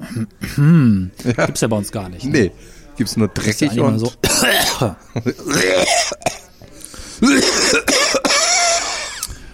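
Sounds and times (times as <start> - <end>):
speech: 0.2 - 6.4, 7.2 - 8.4
harsh phlegmy coughs: 4.2 - 6.5, 7.2 - 9.3.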